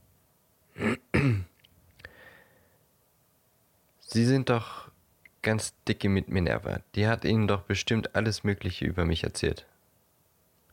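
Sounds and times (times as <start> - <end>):
man clearing his throat: 0.8 - 1.6
speech: 4.1 - 9.7.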